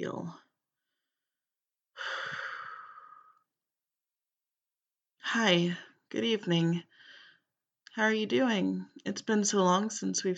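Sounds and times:
speech: 0:00.0 - 0:00.4, 0:05.3 - 0:06.9, 0:08.0 - 0:10.3
deep breath taken before greeting a visitor: 0:02.0 - 0:03.4, 0:06.9 - 0:07.5.

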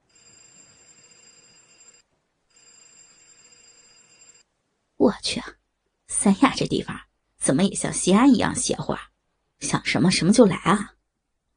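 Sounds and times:
telephone ringing with a trilling tone: 0:00.0 - 0:04.5
speech: 0:05.0 - 0:05.6, 0:06.2 - 0:11.0.

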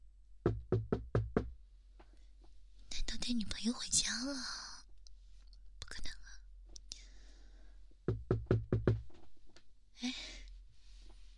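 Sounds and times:
firm loud knocks on a door: 0:00.4 - 0:01.5, 0:08.1 - 0:09.2
speech: 0:03.3 - 0:04.6.

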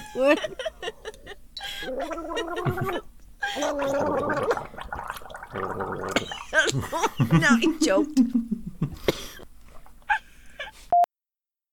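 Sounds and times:
speech: 0:00.1 - 0:01.0, 0:01.8 - 0:04.6, 0:05.5 - 0:08.5
people gargling together: 0:00.2 - 0:07.6.

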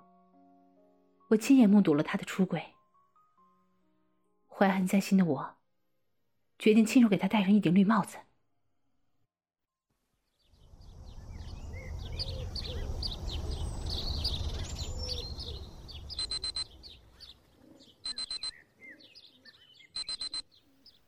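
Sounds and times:
speech: 0:01.3 - 0:02.8, 0:04.6 - 0:05.6, 0:06.6 - 0:08.3
birds chirping and cooing: 0:11.2 - 0:20.0
alarm clock buzzing: 0:16.2 - 0:16.7, 0:18.1 - 0:18.5, 0:20.0 - 0:20.4.

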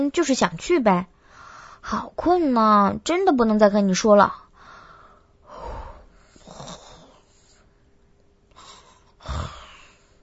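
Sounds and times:
speech: 0:00.0 - 0:01.1, 0:01.8 - 0:04.4
girl fake snoring with exaggerated rasping breaths: 0:05.5 - 0:07.3, 0:08.6 - 0:10.2.

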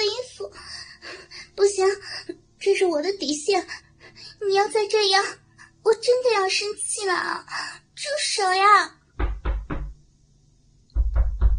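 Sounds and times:
speech: 0:02.8 - 0:03.8, 0:04.4 - 0:09.0
knocking on a door: 0:09.2 - 0:10.0, 0:10.9 - 0:11.5.

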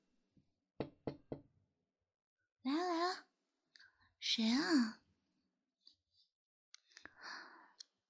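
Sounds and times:
sharp knocks on a door: 0:00.8 - 0:01.5
speech: 0:04.4 - 0:05.0.

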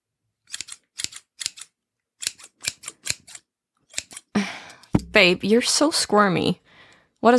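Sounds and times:
scissors cutting hair on the top of the head: 0:00.5 - 0:04.3
speech: 0:05.2 - 0:06.6.

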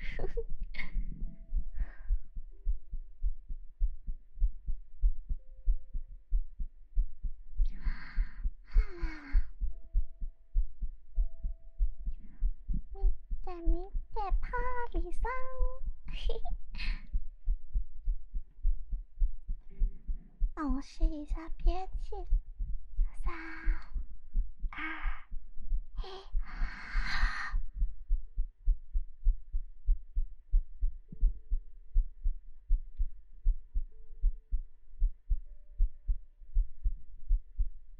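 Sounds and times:
heartbeat: 0:00.0 - 0:37.9
brief high-pitched voice sounds: 0:12.8 - 0:17.0, 0:20.6 - 0:22.4, 0:23.1 - 0:24.0
speech: 0:20.8 - 0:22.5.

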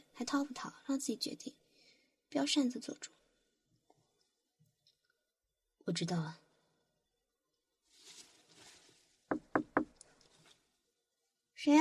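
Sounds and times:
speech: 0:00.2 - 0:01.6, 0:02.3 - 0:03.2, 0:05.8 - 0:06.4, 0:11.6 - 0:11.8
firm knocks on the door of an ear-cleaning shop: 0:09.3 - 0:09.9.

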